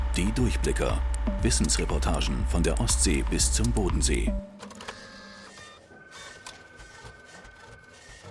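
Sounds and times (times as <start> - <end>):
speech: 0.1 - 4.6
office printer whirring and clicking as paper feeds: 3.1 - 8.3.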